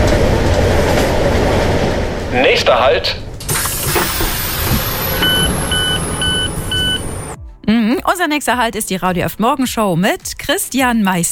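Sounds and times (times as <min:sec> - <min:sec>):
train rolling along rails: 0:00.0 - 0:07.4
speech: 0:02.6 - 0:03.2, 0:07.7 - 0:11.3.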